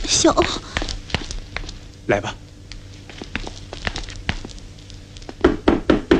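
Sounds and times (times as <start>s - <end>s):
speech: 0.2s - 0.8s, 2.1s - 2.4s
knocking on a door: 5.4s - 6.1s.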